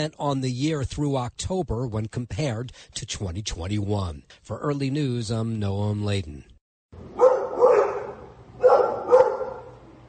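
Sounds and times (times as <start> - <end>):
speech: 0.0 - 6.5
dog barking: 7.1 - 9.8.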